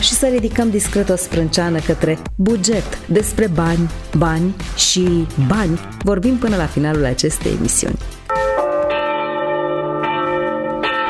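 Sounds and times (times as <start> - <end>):
speech: 0.1 - 8.2
church bells tolling for a funeral: 8.3 - 11.0.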